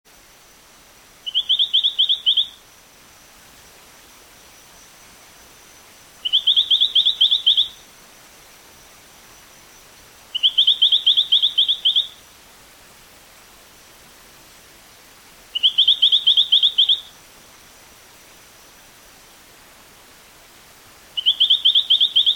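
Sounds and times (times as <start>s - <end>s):
Allobates zaparo calling: 1.2s - 2.6s, 6.2s - 7.9s, 10.3s - 12.2s, 15.5s - 17.2s, 21.2s - 22.3s.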